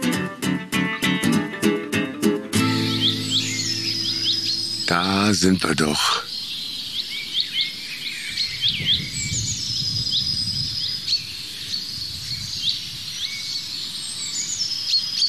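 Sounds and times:
bird calling short rising huit notes: 0.0s - 9.4s
sharp pink bird calls: 2.6s - 8.0s
other birdsong: 2.6s - 15.2s
steady insect-like hiss: 2.7s - 15.2s
speech: 4.9s - 6.3s.

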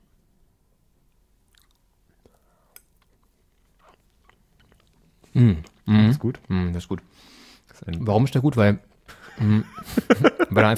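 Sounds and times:
low noise: 0.0s - 10.7s
biting and chewing a soft fluffy Gugelhupf bundt cake: 1.5s - 6.5s
speech: 5.4s - 10.7s
laughter: 9.1s - 10.7s.

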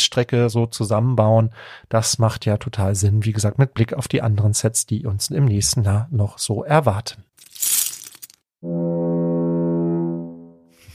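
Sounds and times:
speech: 0.1s - 7.8s
foghorn blast: 8.6s - 10.7s.

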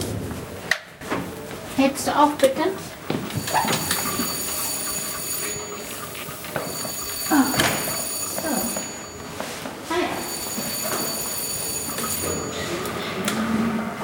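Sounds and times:
indoor footsteps and shuffling: 0.0s - 12.8s
speech: 1.8s - 3.8s
theatre bell signal ringing: 2.8s - 13.2s.

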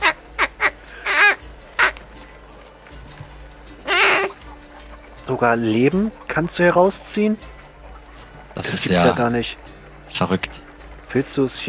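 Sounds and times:
duck quacking: 0.0s - 2.0s, 3.8s - 4.9s
speech: 5.3s - 7.6s, 8.6s - 11.6s.

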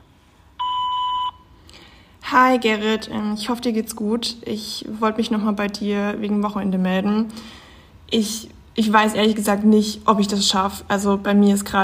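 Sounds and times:
voicemail beep: 0.6s - 1.4s
speech: 2.3s - 11.8s.

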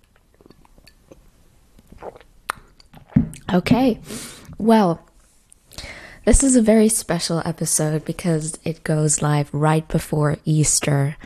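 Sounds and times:
person sipping tea from a cup: 0.0s - 3.5s
speech: 3.5s - 5.1s, 6.3s - 11.2s.

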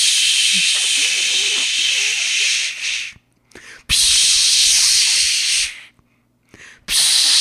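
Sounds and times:
voice imitating a long-nozzle spray can hissing into a bees' nest: 0.0s - 3.2s, 3.9s - 5.9s, 6.9s - 7.3s.

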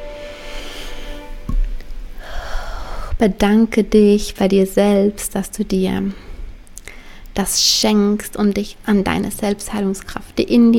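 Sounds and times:
deep breath during a guided relaxation exercise: 0.1s - 1.5s, 2.2s - 3.2s, 6.1s - 7.3s
speech: 3.2s - 6.2s, 7.4s - 10.7s.

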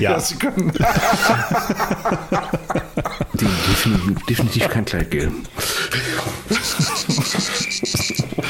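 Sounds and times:
speech: 0.0s - 6.9s
laughter: 0.4s - 8.4s
dense chorus of cicadas chirping: 7.3s - 8.4s.

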